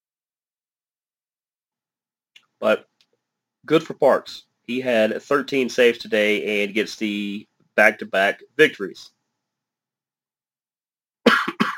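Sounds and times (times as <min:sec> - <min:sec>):
speech: 0:02.6 - 0:02.9, 0:03.6 - 0:09.2
loud harsh double cough: 0:11.2 - 0:11.7.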